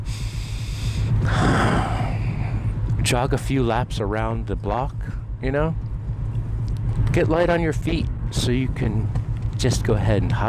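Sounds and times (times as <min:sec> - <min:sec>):
deep gasping breath of a breathing exercise: 0:00.0 - 0:02.8
low steady hum: 0:00.0 - 0:10.4
speech: 0:03.1 - 0:05.8, 0:07.2 - 0:10.4.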